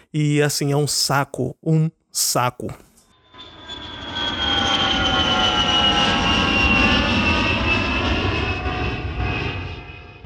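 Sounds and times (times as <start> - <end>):
speech: 0.1 - 2.9
airplane engine drone with a high whining tone: 3.2 - 10.2.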